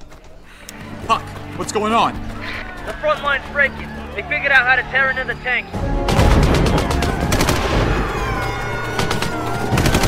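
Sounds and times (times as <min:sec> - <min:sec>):
speech: 0:01.1 - 0:05.9
heavy .50 calibre machine gun fire: 0:06.1 - 0:10.0.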